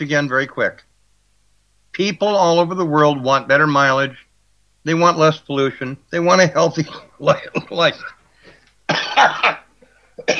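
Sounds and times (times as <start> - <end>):
speech: 0.0 - 0.9, 2.0 - 4.2, 4.8 - 8.2, 8.9 - 9.6, 10.2 - 10.3
person coughing in harsh rough bursts: 6.8 - 10.3.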